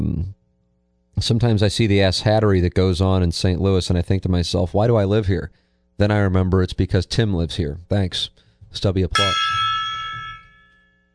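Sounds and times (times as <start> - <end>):
speech: 1.2 - 9.6
gong ringing with a metallic shimmering tone: 9.2 - 10.9.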